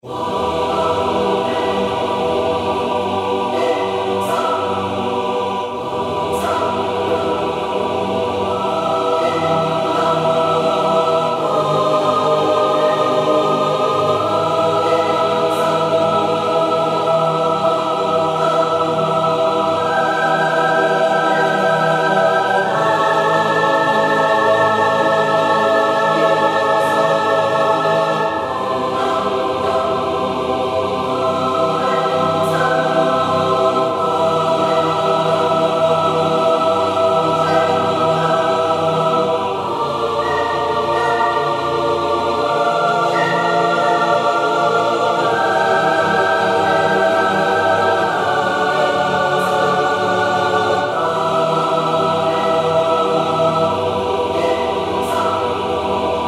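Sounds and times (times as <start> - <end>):
general music layer: 0.0 - 56.2.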